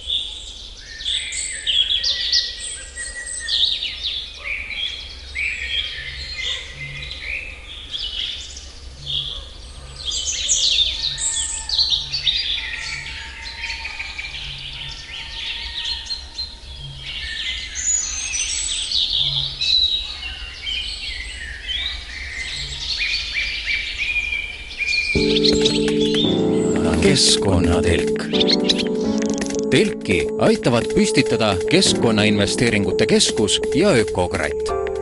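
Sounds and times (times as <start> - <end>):
morning chorus of birds chirping and trilling: 0.0 - 33.5
speech: 27.3 - 28.8, 29.7 - 34.9.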